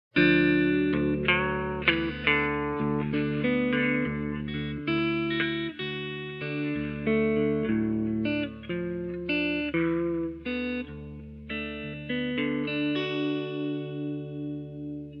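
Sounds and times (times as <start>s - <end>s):
guitar music from a game: 0.1s - 15.1s.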